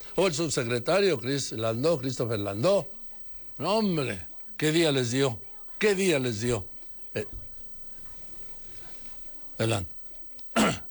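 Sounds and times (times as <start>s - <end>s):
quiet murmur: 0.0s - 10.8s
speech: 0.2s - 3.0s, 3.6s - 7.4s, 9.6s - 9.9s, 10.6s - 10.8s
person sneezing: 10.6s - 10.8s.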